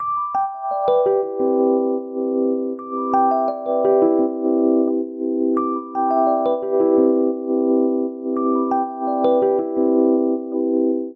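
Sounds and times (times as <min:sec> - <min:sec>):
descending arpeggiated ostinato on electric keyboards in C major seventh: 0:00.0 - 0:11.1.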